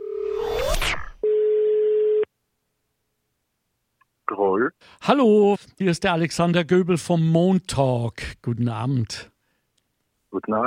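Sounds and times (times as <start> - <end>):
telephone line tones while placing a call: 0.0 - 0.3, 1.2 - 2.3
speech: 4.8 - 9.3, 10.3 - 10.6.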